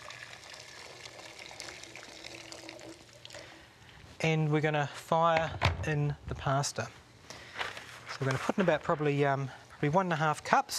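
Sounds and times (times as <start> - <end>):
boiling water pouring into a cooking pot: 0.0 - 3.7
speech: 4.2 - 7.0, 8.2 - 10.7.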